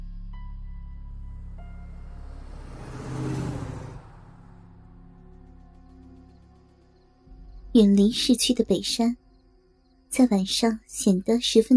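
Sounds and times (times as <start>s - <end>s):
car engine revving as a woman drives off toward a villa area: 1.1s - 7.2s
speech: 7.8s - 9.2s, 10.1s - 11.7s.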